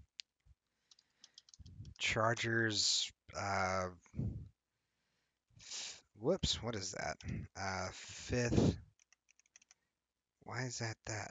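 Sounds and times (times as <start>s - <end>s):
computer keyboard keys clicking: 1.2s - 1.7s
speech: 2.1s - 4.2s, 6.2s - 8.8s, 10.5s - 11.2s.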